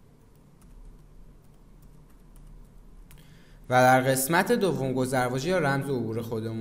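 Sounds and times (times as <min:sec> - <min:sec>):
steady low hum: 0:00.0 - 0:06.5
typing on a computer keyboard: 0:00.1 - 0:03.2
speech: 0:03.7 - 0:06.5.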